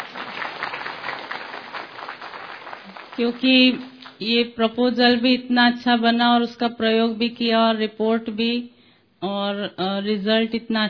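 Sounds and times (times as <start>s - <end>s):
crowd applauding: 0.0s - 4.2s
speech: 3.2s - 10.8s.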